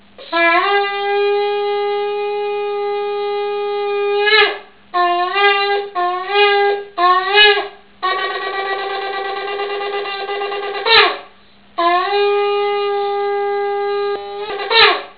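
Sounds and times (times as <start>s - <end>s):
shofar: 0.2s - 15.1s.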